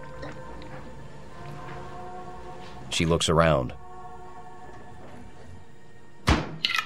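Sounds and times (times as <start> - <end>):
speech: 2.9 - 3.8
refrigerator door swinging shut: 6.2 - 6.6.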